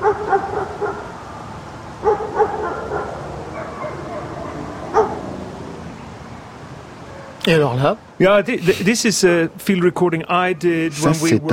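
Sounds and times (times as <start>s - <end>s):
dogs snarling, barking and yelping in a street fight: 0.0s - 1.2s, 2.0s - 5.8s
steady street hum: 0.0s - 11.5s
speech: 7.4s - 11.5s.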